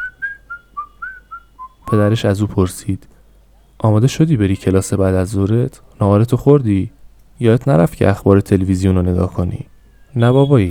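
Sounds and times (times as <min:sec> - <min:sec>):
person whistling a cheerful tune: 0:00.0 - 0:02.0
speech: 0:01.9 - 0:03.2, 0:03.8 - 0:10.7.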